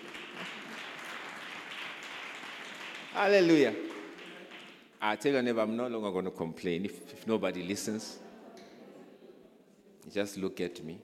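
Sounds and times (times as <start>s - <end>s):
audience clapping hands: 0.0s - 5.0s
speech: 3.2s - 3.9s, 5.0s - 8.2s, 10.0s - 11.0s.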